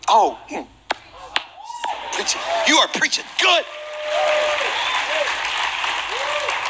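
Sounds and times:
speech: 0.1 - 0.8, 2.2 - 4.3
polite audience golf-clap applause in a gym: 1.8 - 6.6.

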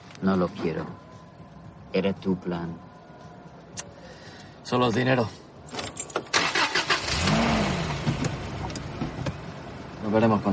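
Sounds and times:
speech: 0.2 - 1.1, 1.9 - 2.8, 4.7 - 5.4, 10.1 - 10.5
car engine starting: 5.9 - 10.5
car driving away with steady engine drone: 6.4 - 10.0.

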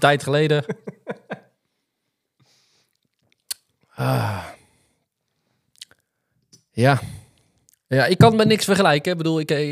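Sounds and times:
speech: 0.0 - 0.9, 4.0 - 4.6, 6.8 - 7.2, 7.9 - 9.6
laughter: 0.5 - 1.5
mouth clicks and smacks while sipping beer: 2.9 - 3.9, 5.7 - 6.7, 7.6 - 7.9.

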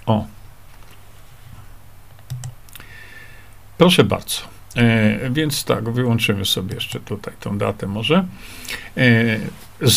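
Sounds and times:
low steady hum: 0.0 - 9.9
speech: 0.1 - 0.4, 3.8 - 9.9
computer mouse and keyboard clicks: 2.2 - 2.6.

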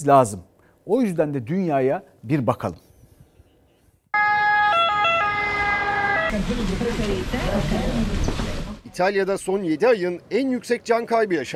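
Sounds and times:
speech: 0.0 - 2.8, 6.3 - 8.4, 9.0 - 11.5
ambulance siren alternating between two tones: 4.1 - 6.5.

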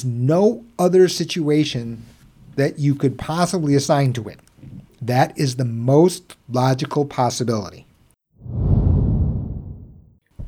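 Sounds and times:
speech: 0.0 - 8.6
deep whoosh transition sound effect: 8.4 - 10.1.

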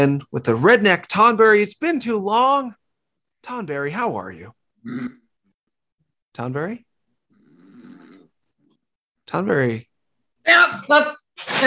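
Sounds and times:
speech: 0.0 - 2.8, 3.4 - 5.2, 6.4 - 6.9, 9.3 - 11.6
person snoring loudly: 7.3 - 8.3.

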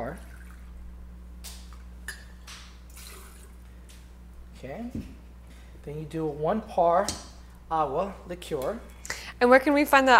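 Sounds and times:
reposado tequila pouring into a large party cocktail shaker over ice: 0.2 - 0.7, 2.9 - 3.6
speech: 4.6 - 5.2, 5.8 - 10.1.

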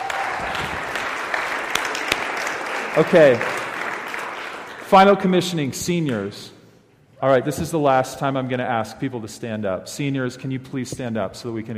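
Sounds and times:
audience applause: 0.0 - 4.9
speech: 3.0 - 3.5, 4.9 - 6.6, 7.2 - 11.7.

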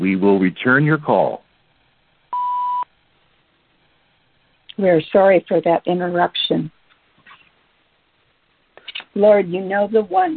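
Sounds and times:
speech: 0.0 - 1.4, 4.8 - 6.8, 9.2 - 10.3
faint hiss: 0.0 - 10.3
answering machine electronic beep: 2.3 - 2.9.

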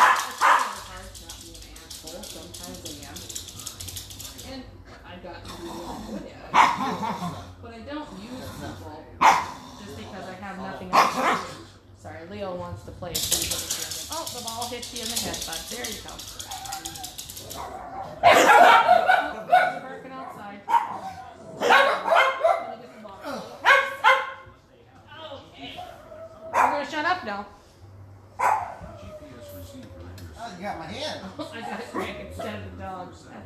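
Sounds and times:
dogs barking: 0.0 - 0.9, 6.5 - 7.5, 9.2 - 9.7, 10.8 - 11.7, 16.2 - 23.0, 23.6 - 24.6, 25.8 - 27.0, 28.4 - 29.0
speech: 12.8 - 13.7, 14.4 - 16.4.

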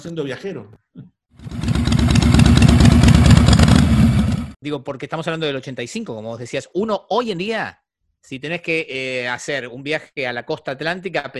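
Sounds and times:
speech: 0.0 - 0.8, 4.6 - 11.3
motorcycle engine rumbling: 1.4 - 4.6.

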